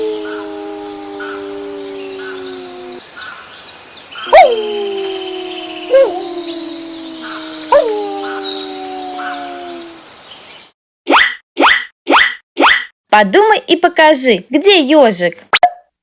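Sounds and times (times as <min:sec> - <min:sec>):
several wolves howling together: 0:00.0 - 0:03.0, 0:04.2 - 0:10.0
faint chirping: 0:00.1 - 0:10.7
speech: 0:13.2 - 0:15.5.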